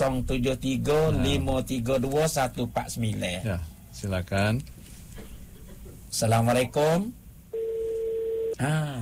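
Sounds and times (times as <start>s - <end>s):
speech: 0.0s - 4.8s, 6.1s - 7.2s, 8.6s - 9.0s
telephone tone on a radio phone-in line: 7.6s - 8.6s.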